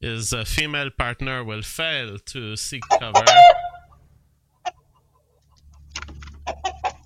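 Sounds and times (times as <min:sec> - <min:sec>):
speech: 0:00.0 - 0:03.6
rooster and hen clucking in a coop: 0:02.9 - 0:07.0.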